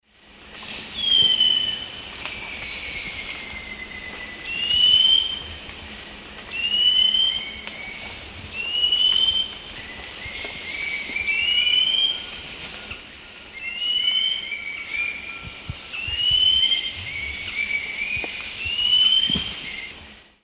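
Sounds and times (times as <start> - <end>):
Hylophilus ochraceiceps singing in South American eastern lowlands: 0.8 - 5.5, 6.5 - 19.9.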